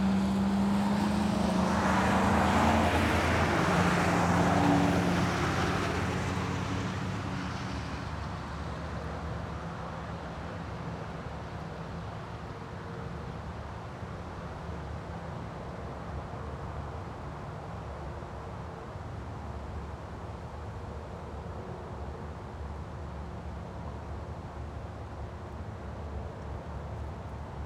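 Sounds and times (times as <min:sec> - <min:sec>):
vehicle passing on a wet road: 0:00.0 - 0:08.1
soft steady outdoor wash with a low rumble: 0:00.0 - 0:27.6.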